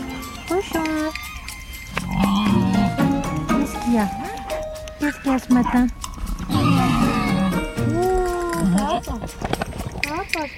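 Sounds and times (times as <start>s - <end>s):
farmyard goats and sheep bleating: 0.5s - 3.2s, 5.7s - 9.4s
farmyard geese honking: 1.5s - 3.4s, 6.4s - 9.2s
speech: 4.0s - 4.4s, 5.0s - 7.1s, 10.3s - 10.5s.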